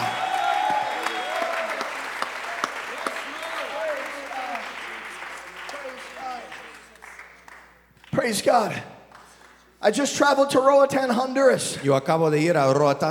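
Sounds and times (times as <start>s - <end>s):
large crowd applauding: 0.0s - 8.2s
speech: 8.2s - 8.9s, 9.8s - 13.1s.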